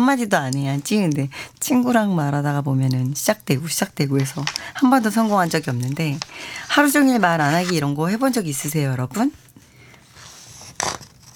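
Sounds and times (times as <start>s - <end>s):
speech: 0.0s - 9.4s
papers with listeners' stories rustling: 4.0s - 8.8s, 10.2s - 11.3s.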